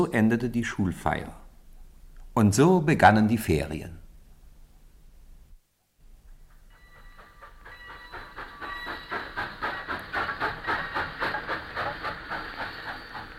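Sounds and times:
speech: 0.0s - 1.4s, 2.4s - 4.0s
steam train puffing as it pulls away from a station: 6.4s - 13.3s.

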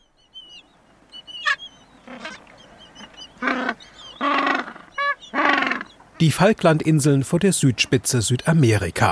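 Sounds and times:
higher chirps and squawks from a noisy penguin colony: 1.2s - 6.0s
gentoo penguins braying: 3.4s - 5.9s
speech: 6.2s - 9.0s.

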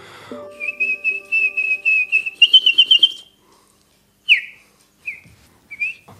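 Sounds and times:
person whistling imitations of chaffinch and tit songs: 0.6s - 3.4s, 4.3s - 6.1s.

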